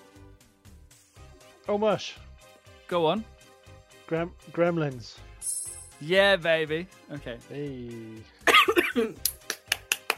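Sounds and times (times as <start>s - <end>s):
speech: 1.7s - 2.2s, 2.9s - 3.3s, 4.1s - 5.3s, 6.0s - 9.3s
person coughing: 8.4s - 9.2s.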